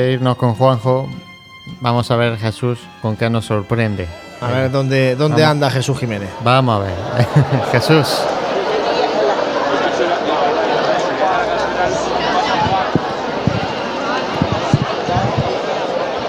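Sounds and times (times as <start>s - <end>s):
speech: 0.0s - 8.4s
large crowd of people murmuring while waiting in an open square: 0.0s - 16.2s
laughter: 2.5s - 16.2s
footsteps: 11.4s - 15.8s
sharp thumps: 12.5s - 15.6s.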